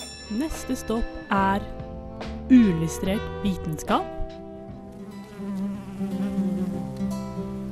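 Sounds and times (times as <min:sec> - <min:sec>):
speech: 0:00.3 - 0:04.4
bee buzzing: 0:04.7 - 0:07.7.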